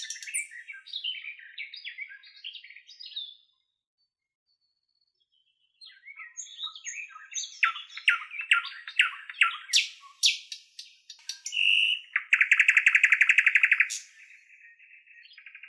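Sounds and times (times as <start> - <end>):
nightingale song: 0.0 - 3.6, 5.2 - 15.6.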